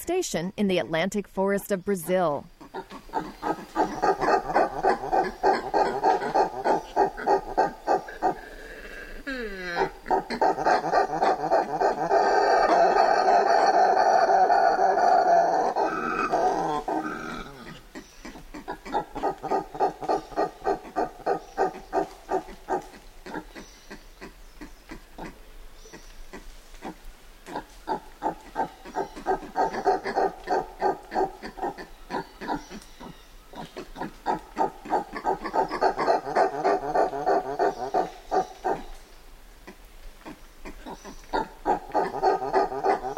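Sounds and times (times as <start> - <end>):
speech: 0.0 - 4.0
group of woolly spider monkeys grunting and chattering: 2.5 - 39.0, 39.6 - 43.1.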